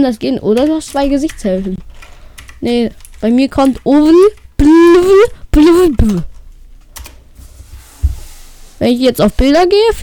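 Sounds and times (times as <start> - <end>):
speech: 0.0 - 6.3, 8.8 - 10.0
soft clicks on a computer keyboard: 0.6 - 4.5.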